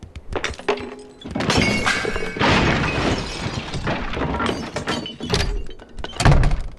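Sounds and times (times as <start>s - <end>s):
video game crash sound effect of objects tumbling and breaking: 0.3s - 6.7s.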